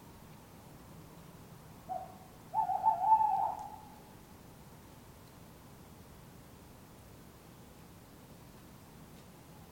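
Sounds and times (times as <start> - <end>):
tawny owls calling in an urban setting in Surrey England: 1.9 - 4.1.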